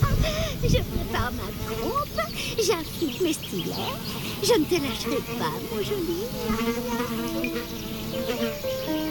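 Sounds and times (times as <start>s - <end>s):
horsefly buzzing while hovering: 0.6s - 9.0s
speech: 0.6s - 9.0s.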